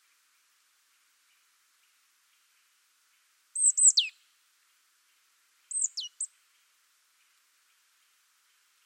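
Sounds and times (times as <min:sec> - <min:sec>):
Poecile palustris marsh tit calling: 0:03.6 - 0:04.1, 0:05.7 - 0:06.3.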